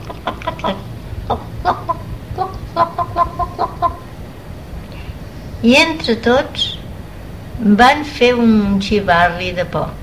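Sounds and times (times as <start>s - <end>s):
hen clucking: 0.0s - 4.2s
low rumble: 0.0s - 10.0s
speech: 5.6s - 6.7s, 7.6s - 10.0s.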